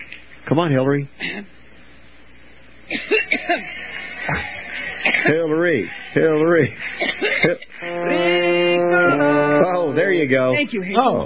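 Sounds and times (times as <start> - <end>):
speech: 0.5 - 1.6, 2.9 - 8.4, 9.1 - 11.2
woman coughing: 1.2 - 1.5, 2.9 - 3.7, 5.0 - 5.4, 7.0 - 7.7
laughter: 3.2 - 5.1, 5.8 - 9.9.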